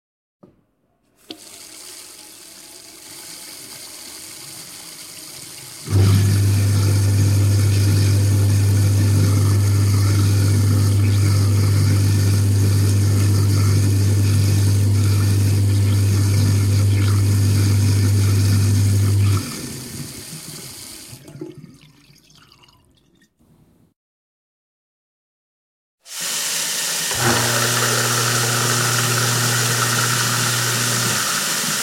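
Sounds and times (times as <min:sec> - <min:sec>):
waste disposal grinding: 0:05.8 - 0:20.0, 0:26.9 - 0:31.8.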